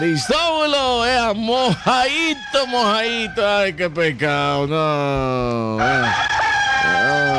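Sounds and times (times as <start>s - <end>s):
speech: 0.0s - 6.3s
rooster soaked by winter rain crowing: 1.7s - 3.6s, 5.8s - 7.3s.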